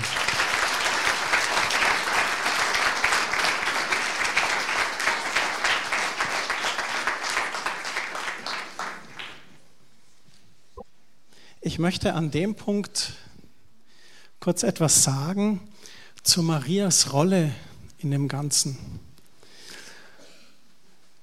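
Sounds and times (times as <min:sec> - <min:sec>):
crowd applauding: 0:00.0 - 0:09.5
speech: 0:11.8 - 0:13.2, 0:14.4 - 0:19.1.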